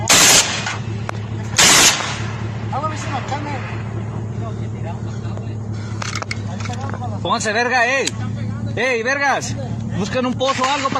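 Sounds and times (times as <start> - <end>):
rapid automatic gunfire in a shootout between criminal gangs in Chihuahua, northern Mexico: 0.0 - 0.8, 1.6 - 2.4
low rumble: 0.0 - 10.9
speech: 7.3 - 8.2, 8.8 - 10.9.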